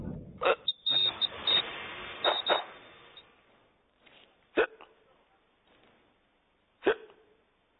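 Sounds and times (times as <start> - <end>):
person deliberately faking hiccups with their voice: 0.4 - 1.1, 4.5 - 5.0, 6.8 - 7.3.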